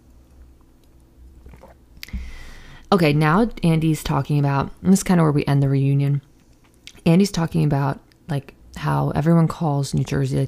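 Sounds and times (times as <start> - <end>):
sipping from a drink and swallowing: 1.0 - 2.5
speech: 2.9 - 6.3, 7.0 - 10.4.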